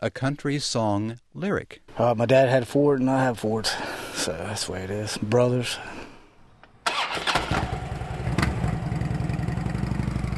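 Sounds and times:
speech: 0.0s - 6.0s
motorcycle engine starting and idling: 7.0s - 10.3s.

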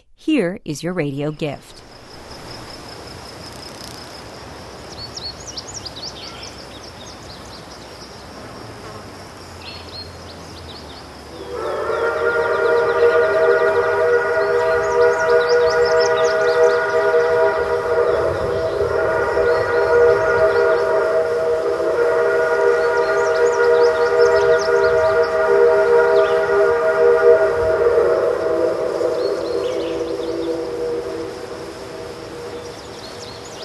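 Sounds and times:
speech: 0.2s - 1.9s
long loud train whistle near Cass West Virginia: 11.3s - 33.6s.

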